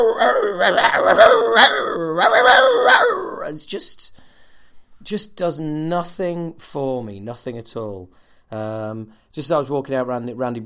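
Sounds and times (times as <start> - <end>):
human voice imitating a small dog's yappy barking: 0.0 - 3.6
speech: 0.0 - 4.2, 5.0 - 10.6.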